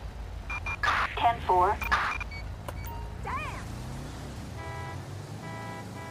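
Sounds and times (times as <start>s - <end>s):
road traffic rumble: 0.0s - 6.0s
speech: 1.2s - 2.0s
car horn blaring: 4.6s - 6.0s.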